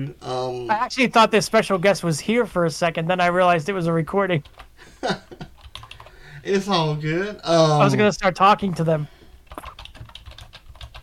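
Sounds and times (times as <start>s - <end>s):
speech: 0.0s - 5.5s, 6.4s - 9.2s
computer keyboard typing: 4.4s - 4.7s, 5.5s - 6.2s, 9.4s - 11.0s.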